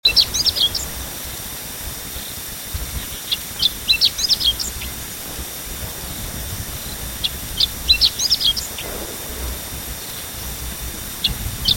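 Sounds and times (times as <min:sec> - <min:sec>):
steady hiss: 0:00.0 - 0:11.7
chestnut-eared bunting twittering calls: 0:00.1 - 0:01.2, 0:02.2 - 0:11.7.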